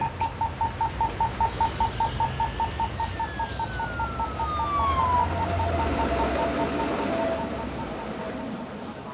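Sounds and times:
birdsong with repeated chirps and twittering: 0.0 - 9.1
rumbling urban background: 0.0 - 9.1
sweeping siren-like tone: 3.2 - 7.7.

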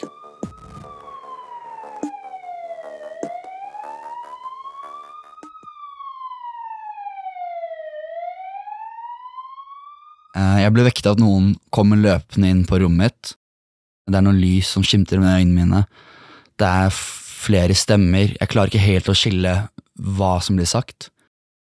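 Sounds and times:
ambulance siren wailing while driving: 0.0 - 10.4
speech: 10.4 - 13.4, 14.1 - 21.2.

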